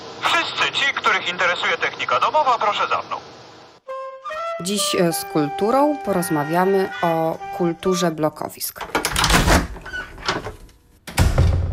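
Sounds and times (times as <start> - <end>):
speech: 0.4 - 3.2, 4.6 - 9.0
clattering knocks and rattles of a door being handled: 8.8 - 11.7.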